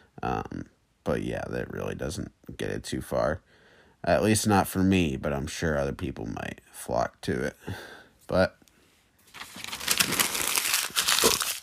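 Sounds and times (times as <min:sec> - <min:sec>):
speech: 0:00.2 - 0:08.6
paper notes being crumpled: 0:09.3 - 0:11.6.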